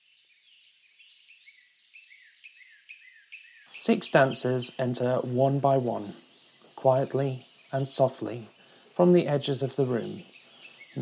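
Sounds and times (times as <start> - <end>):
soft birdsong: 0.0 - 11.0
faint hiss: 3.7 - 11.0
speech: 3.8 - 10.3.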